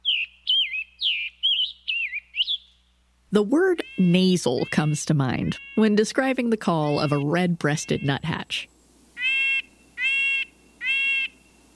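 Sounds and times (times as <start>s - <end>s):
Scarlet Tanager singing hoarse burry phrases: 0.0s - 2.9s, 3.7s - 11.7s
speech: 3.3s - 8.7s.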